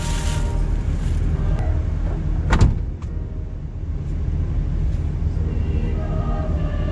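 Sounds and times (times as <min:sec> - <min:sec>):
steady low rumble of a vehicle interior: 0:00.0 - 0:06.8
car door being pulled shut: 0:02.5 - 0:03.1.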